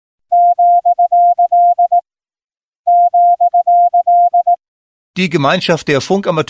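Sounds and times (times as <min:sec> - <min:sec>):
Morse code beeps of a steady tone: 0:00.3 - 0:02.0, 0:02.9 - 0:04.6
speech: 0:05.2 - 0:06.4.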